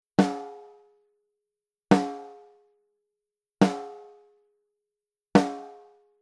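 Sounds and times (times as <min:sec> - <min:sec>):
snare drum through Daking Pre IV preamp: 0:00.2 - 0:00.6, 0:03.6 - 0:04.1, 0:05.4 - 0:05.8.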